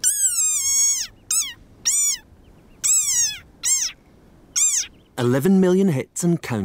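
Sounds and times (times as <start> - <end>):
desert rain frog squeaking: 0.0 - 5.0
speech: 5.2 - 6.6.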